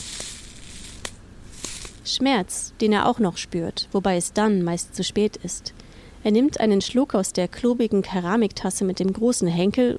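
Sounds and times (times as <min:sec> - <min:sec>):
tea bag being handled and rustling: 0:00.0 - 0:02.1
quiet hiss: 0:00.0 - 0:02.8
speech: 0:02.1 - 0:09.9.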